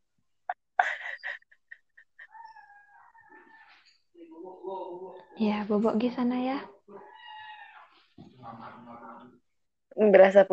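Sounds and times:
speech: 0:05.4 - 0:06.7, 0:10.0 - 0:10.5
kitten meowing: 0:07.0 - 0:07.9.

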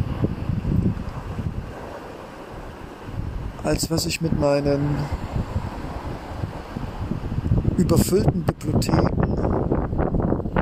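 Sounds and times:
steady wash of sea waves: 0:00.0 - 0:10.6
wind gusts: 0:00.0 - 0:10.6
speech: 0:03.7 - 0:05.6, 0:07.8 - 0:09.7.

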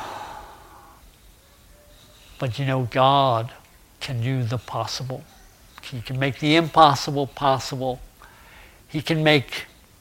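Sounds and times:
person yawning: 0:00.0 - 0:01.0
speech: 0:02.4 - 0:08.1, 0:08.9 - 0:09.7.

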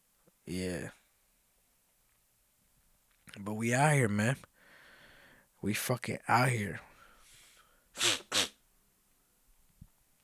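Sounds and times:
speech: 0:00.5 - 0:01.0, 0:03.4 - 0:04.5, 0:05.6 - 0:06.9
sharp sneezes: 0:08.0 - 0:08.6.

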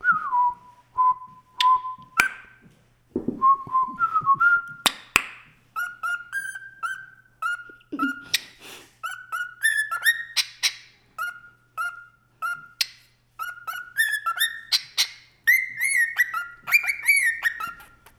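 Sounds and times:
pet bird whistling a rock song: 0:00.0 - 0:02.6, 0:03.4 - 0:05.0, 0:05.8 - 0:18.0.

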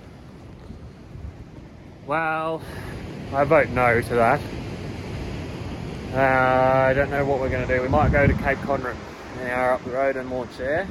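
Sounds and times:
gusty wind buffeting the microphone: 0:00.0 - 0:10.8
pressure waves breaking over a river bar during floodwater: 0:00.0 - 0:10.8
speech: 0:02.1 - 0:04.6, 0:06.1 - 0:10.8.

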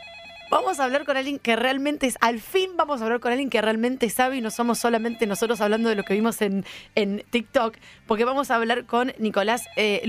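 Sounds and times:
Panasonic telephone ringing with a warbling electronic ring: 0:00.0 - 0:01.4, 0:04.4 - 0:06.4, 0:09.4 - 0:10.0
speech: 0:00.5 - 0:10.0.

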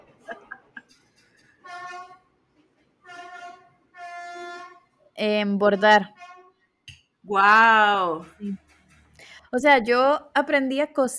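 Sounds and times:
train horn blasts as the train approaches: 0:01.6 - 0:02.4, 0:03.0 - 0:06.6
speech: 0:05.2 - 0:06.2, 0:07.3 - 0:08.6, 0:09.5 - 0:11.1.

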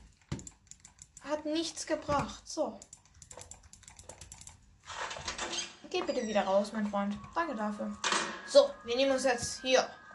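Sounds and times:
computer mouse clicking: 0:00.0 - 0:01.4, 0:02.7 - 0:04.6
speech: 0:01.4 - 0:03.0, 0:06.0 - 0:10.0.

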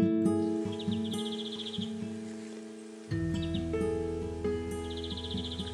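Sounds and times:
European greenfinch singing buzzy trilled phrases in the mountains: 0:00.2 - 0:05.7.

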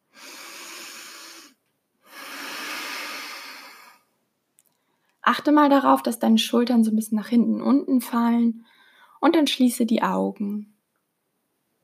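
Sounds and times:
deep breath in and out: 0:00.0 - 0:05.2, 0:08.6 - 0:09.2
speech: 0:05.3 - 0:10.7.

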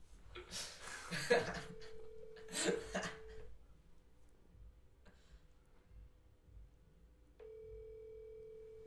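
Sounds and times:
phone line ringback tone: 0:01.6 - 0:03.5, 0:07.4 - 0:08.8
person coughing or clearing throat: 0:02.5 - 0:03.4.

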